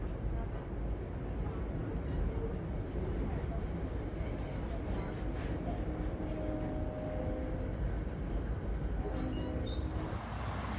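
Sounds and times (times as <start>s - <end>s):
train riding on rails heard from inside a carriage: 0.0s - 10.7s.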